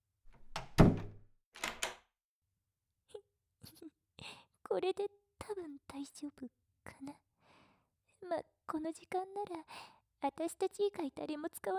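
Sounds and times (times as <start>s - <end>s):
door of a small private room closing thud: 0.3s - 2.0s
speech: 4.7s - 7.3s, 8.2s - 11.7s.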